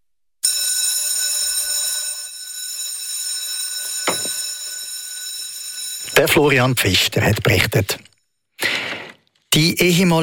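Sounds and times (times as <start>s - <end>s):
electric school bell ringing through school classrooms in Wald: 0.4s - 7.1s
thud or knock: 4.1s - 4.4s
speech: 6.2s - 8.1s, 9.5s - 10.2s.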